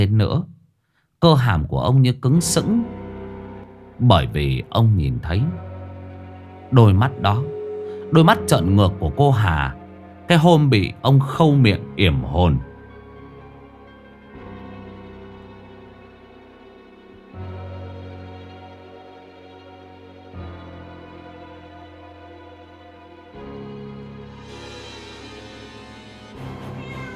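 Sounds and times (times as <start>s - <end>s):
speech: 0.0s - 0.5s, 1.2s - 3.0s, 4.0s - 5.7s, 6.7s - 7.5s, 8.1s - 12.7s
steady low drone: 2.3s - 26.4s
cat meowing: 26.5s - 27.1s.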